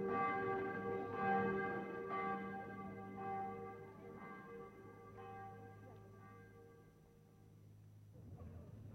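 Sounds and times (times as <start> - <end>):
church bells ringing the 11 o'clock civic ringing: 0.0 - 7.4.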